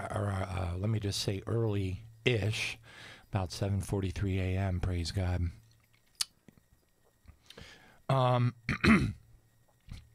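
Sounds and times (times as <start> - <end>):
speech: 0.8 - 5.6, 8.1 - 9.2
person clearing throat: 8.7 - 9.2.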